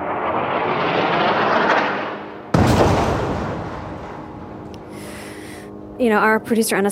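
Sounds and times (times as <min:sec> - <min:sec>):
sharp explosion blast at night in Rafah: 0:00.0 - 0:04.7
deep rumbling roar of airstrikes at night in Rafah: 0:00.0 - 0:04.8
speech: 0:06.0 - 0:06.9.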